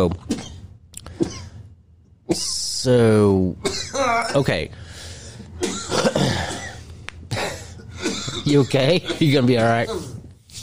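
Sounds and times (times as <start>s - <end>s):
speech: 0.0s - 0.3s, 2.3s - 4.8s, 8.5s - 10.1s
man coughing: 0.2s - 1.6s, 2.3s - 2.7s, 3.6s - 4.7s, 5.6s - 10.2s.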